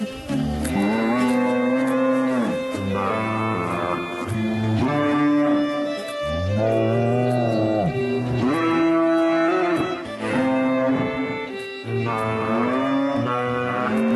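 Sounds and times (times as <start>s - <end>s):
several cows mooing a Christmas tune: 0.0s - 14.1s.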